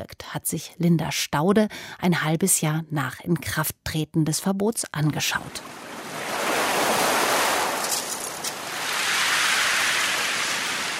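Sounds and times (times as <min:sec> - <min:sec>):
speech: 0:00.1 - 0:05.8
wind: 0:05.5 - 0:10.9
metre-high ocean waves breaking on the beach of Watamu in Kenya: 0:05.6 - 0:10.9.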